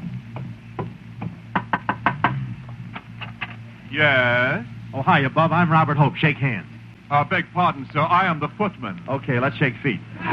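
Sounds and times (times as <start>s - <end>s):
low hum: 0.0s - 10.3s
knocking on a house door: 0.1s - 2.5s
speech: 3.9s - 10.3s.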